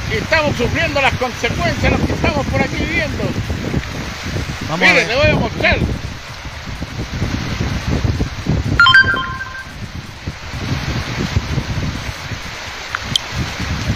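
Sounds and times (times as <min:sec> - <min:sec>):
rushing floodwater from an overflowing canal: 0:00.0 - 0:13.9
speech: 0:00.1 - 0:03.8, 0:04.7 - 0:06.1
short electronic beeping tone: 0:08.8 - 0:09.7.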